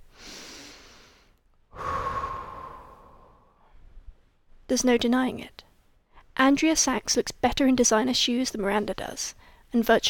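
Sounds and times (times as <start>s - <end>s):
woman breathing deeply while leaning against a bathroom wall: 0.1s - 4.0s
speech: 4.7s - 5.6s, 6.4s - 10.0s.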